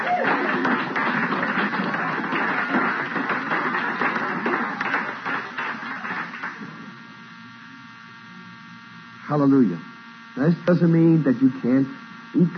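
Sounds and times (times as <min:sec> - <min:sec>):
crowd clapping hands in applause: 0:00.0 - 0:07.0
speech: 0:09.3 - 0:12.5.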